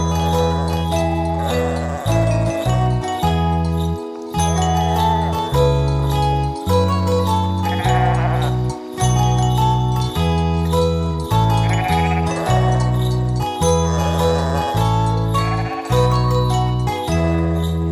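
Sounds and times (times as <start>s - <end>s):
light bells jingling and tinkling: 0.0s - 17.9s
sheep bleating: 0.1s - 2.8s, 4.7s - 5.5s, 7.6s - 8.7s, 11.5s - 16.4s.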